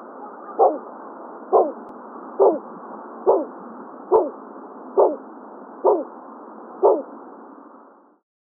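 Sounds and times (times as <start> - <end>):
Bulwer's petrel giving low dog-like woofing calls on Maui, Hawaii: 0.5 - 0.8, 1.5 - 1.8, 2.4 - 2.6, 3.3 - 3.5, 4.1 - 4.4, 5.0 - 5.2, 5.8 - 6.1, 6.8 - 7.1.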